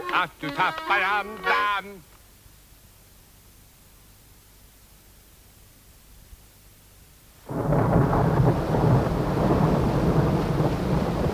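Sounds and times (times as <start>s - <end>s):
laughter: 0.0s - 2.0s
speech: 0.1s - 2.1s
steady rain pouring down: 7.4s - 11.3s
low rolling rumble of distant thunder: 7.5s - 11.3s.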